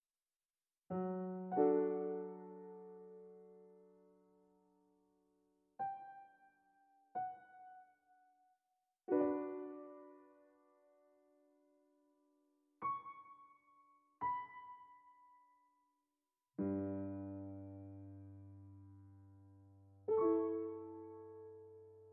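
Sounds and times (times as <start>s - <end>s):
piano theme: 0.9s - 4.6s, 5.8s - 8.1s, 9.1s - 11.4s, 12.8s - 15.6s, 16.6s - 22.1s.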